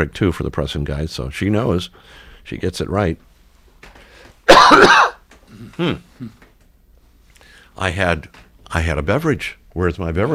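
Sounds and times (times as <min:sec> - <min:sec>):
speech: 0:00.0 - 0:03.3, 0:05.8 - 0:06.4, 0:07.8 - 0:10.3
loud harsh cough: 0:04.5 - 0:06.4
soft short throat-clearing grunts: 0:04.5 - 0:06.4.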